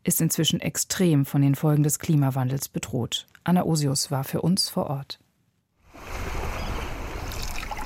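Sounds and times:
speech: 0.0s - 5.2s
rowboat oars splashing and trickling through calm water: 5.9s - 7.8s.

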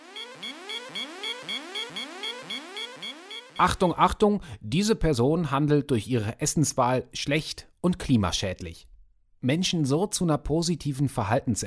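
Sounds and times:
electronic alarm with rising whooping tones: 0.0s - 3.9s
speech: 3.6s - 11.6s.

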